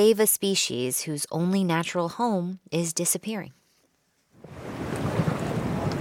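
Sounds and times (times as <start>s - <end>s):
speech: 0.0s - 3.6s
gusty wind buffeting the microphone: 4.4s - 6.0s
open water and waves off Big Pine Key: 4.4s - 6.0s.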